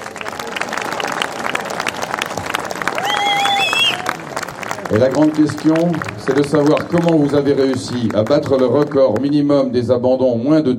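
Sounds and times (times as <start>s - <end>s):
crowd applauding with dense clapping: 0.0s - 9.6s
whistles from the crowd: 3.0s - 4.1s
speech: 4.9s - 10.7s.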